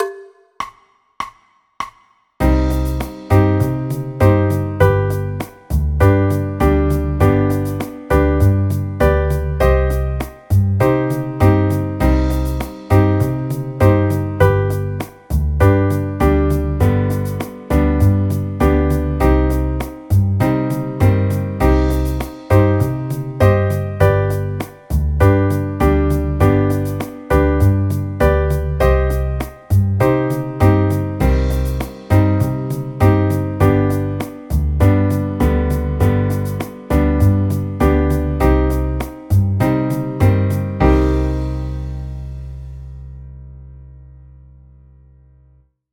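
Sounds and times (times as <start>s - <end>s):
chord progressions in C minor: 2.4s - 44.6s.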